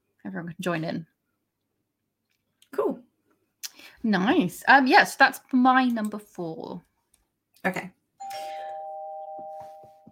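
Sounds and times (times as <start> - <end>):
speech: 0.3 - 1.1, 4.0 - 6.9, 7.6 - 8.4
doorbell ding-dong chime: 8.2 - 10.1.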